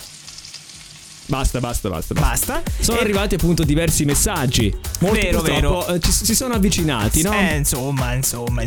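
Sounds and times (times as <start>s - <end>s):
deep fryer frying food in bubbling oil: 0.0s - 2.9s
speech: 1.3s - 8.6s.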